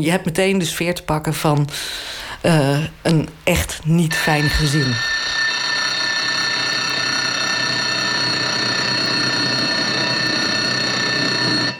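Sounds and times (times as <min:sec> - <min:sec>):
speech: 0:00.0 - 0:05.5
shrill alarm clock bell ringing: 0:04.2 - 0:11.7.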